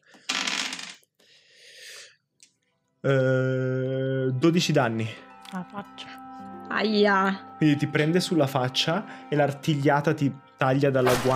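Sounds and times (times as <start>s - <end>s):
two six-sided dice rolling on a hard surface: 0.1s - 1.1s
speech: 3.0s - 11.3s.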